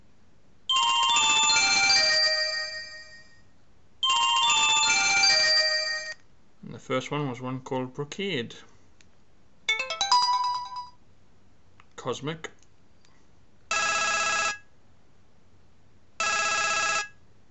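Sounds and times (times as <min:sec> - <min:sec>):
mobile phone ringtone: 0:00.7 - 0:03.4, 0:04.0 - 0:06.2, 0:09.7 - 0:11.0, 0:13.7 - 0:14.6, 0:16.2 - 0:17.2
speech: 0:06.9 - 0:08.7, 0:12.0 - 0:12.6.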